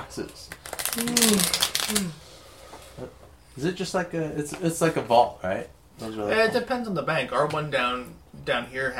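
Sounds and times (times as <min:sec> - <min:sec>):
speech: 0:00.1 - 0:02.2, 0:03.0 - 0:08.9
playing cards being shuffled: 0:00.5 - 0:02.2.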